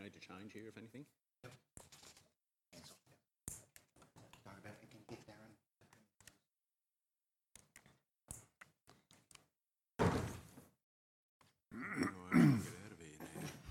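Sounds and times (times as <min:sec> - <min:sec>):
speech: 0:00.1 - 0:01.6
door swinging shut with a loud thud: 0:10.0 - 0:10.4
murmured voices in a room: 0:11.8 - 0:13.6.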